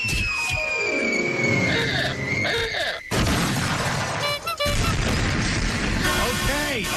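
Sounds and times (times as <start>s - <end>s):
high squealing tones: 0.0s - 3.1s
shattering debris: 3.1s - 6.3s
stolen SUV crashing into yard: 3.1s - 6.8s.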